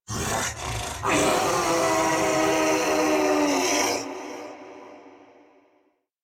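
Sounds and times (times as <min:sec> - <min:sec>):
wolf howling: 0:00.2 - 0:04.5.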